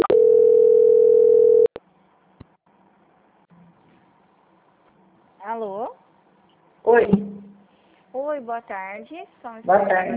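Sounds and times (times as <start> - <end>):
telephone line tone during a call transfer: 0.0 - 1.8
speech: 8.4 - 10.1.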